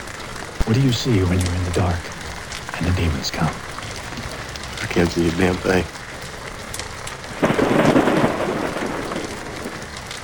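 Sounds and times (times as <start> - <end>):
deep storm rumble: 0.0 - 10.2
heavy rain: 0.0 - 10.2
speech: 0.7 - 2.2, 2.8 - 3.7, 5.0 - 6.0.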